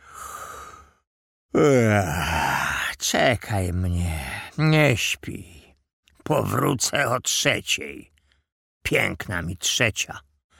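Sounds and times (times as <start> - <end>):
man yawning: 1.5 - 2.8
speech: 1.6 - 2.4, 3.1 - 5.6, 6.3 - 8.1, 8.8 - 10.3.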